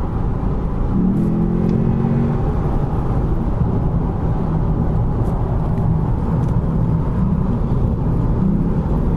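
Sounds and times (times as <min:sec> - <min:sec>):
low rumble of road and traffic noise: 0:00.0 - 0:09.1
Lexus car engine accelerating hard in traffic: 0:00.3 - 0:09.1.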